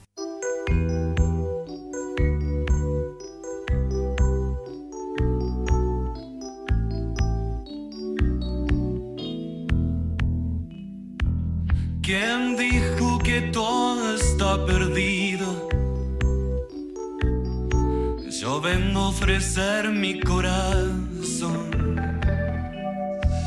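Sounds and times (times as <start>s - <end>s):
AI-generated cover song with pulsing rhythmic accompaniment: 0.4s - 23.4s
person singing: 12.0s - 16.4s, 18.1s - 23.4s
speech: 18.7s - 22.0s.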